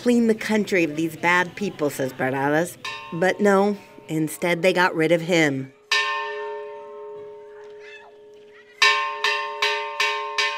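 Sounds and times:
speech: 0.0s - 5.8s
church bells ringing in a small town: 2.8s - 4.1s, 5.8s - 10.5s.

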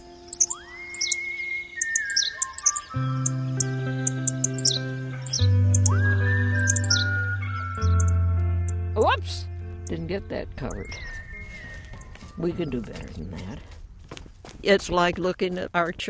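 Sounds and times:
Henslow's sparrow chirps: 0.0s - 8.8s, 9.8s - 13.6s
rising whistles: 0.3s - 3.4s, 4.5s - 8.2s, 10.8s - 12.4s
loud steady low droning tone: 3.2s - 11.9s
speech: 9.2s - 11.1s, 12.4s - 13.7s, 14.6s - 16.0s.

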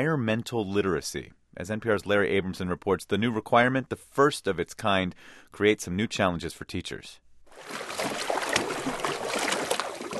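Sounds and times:
speech: 0.0s - 8.2s
canoes being paddled on a creek on a warm summer day: 7.5s - 10.1s
water sloshing and splashing from canoe paddles on a creek: 7.5s - 10.1s.

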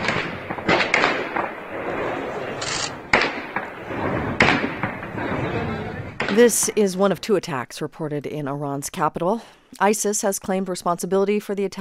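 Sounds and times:
gunfire from armed attackers assaulting a building complex in Tehran: 0.0s - 5.3s, 6.2s - 6.5s
speech: 6.4s - 11.7s.

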